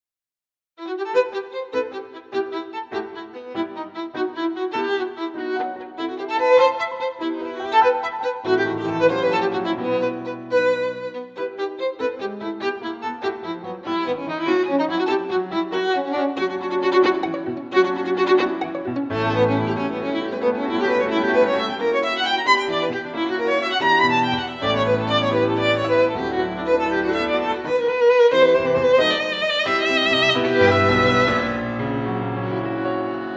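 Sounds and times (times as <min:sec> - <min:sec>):
Italian violin sonatina: 0:00.8 - 0:33.3.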